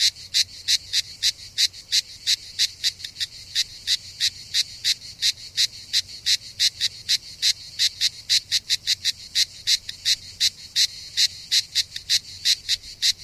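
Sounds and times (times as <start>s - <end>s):
cicada call of short rasping pulses: 0.0s - 13.2s.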